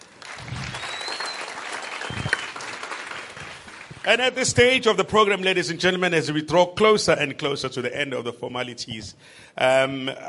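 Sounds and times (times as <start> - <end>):
audience applause: 0.0 - 4.1
speech: 4.0 - 10.2.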